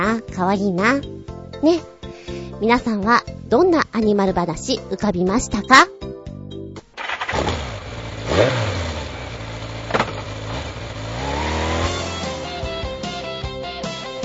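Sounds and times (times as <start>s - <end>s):
speech: 0.1s - 1.9s, 2.6s - 6.0s
motorcycle engine starting, revving and rumbling: 7.0s - 13.4s.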